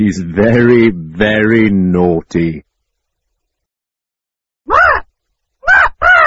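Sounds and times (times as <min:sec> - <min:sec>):
speech: 0:00.0 - 0:02.7
parrot squawking with harsh rasping calls: 0:05.6 - 0:06.2.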